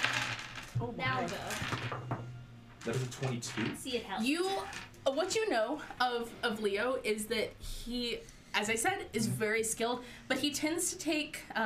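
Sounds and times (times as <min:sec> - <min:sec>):
dice rolled for an insight check clattering across a hard tabletop: 0:00.0 - 0:02.2, 0:04.6 - 0:05.0
speech: 0:00.8 - 0:02.2, 0:02.8 - 0:11.6.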